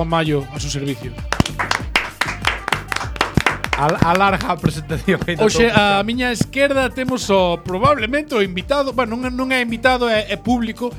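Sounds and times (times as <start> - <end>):
speech: 0.0 - 1.7, 3.8 - 10.9
audience applause at a live comedy show: 1.3 - 6.0.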